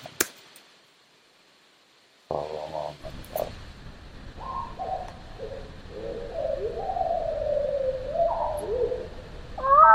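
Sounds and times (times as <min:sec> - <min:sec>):
steady hiss: 0:00.0 - 0:09.9
slowed-down black-capped vireo song: 0:04.4 - 0:09.9.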